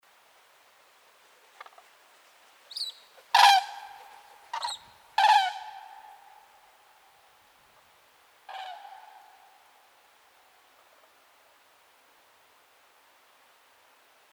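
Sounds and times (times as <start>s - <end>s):
common crane Grus grus calling: 2.7s - 7.0s, 8.4s - 9.9s.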